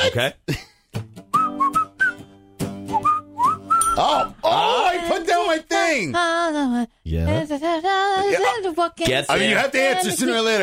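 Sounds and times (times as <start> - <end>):
speech: 0.0 - 0.7, 4.0 - 10.6
person whistling a short melody: 1.3 - 4.0.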